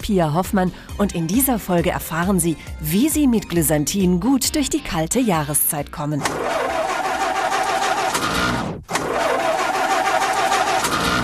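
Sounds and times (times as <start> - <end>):
speech: 0.0 - 6.7
car engine cranking without catching in the cold: 6.2 - 11.2.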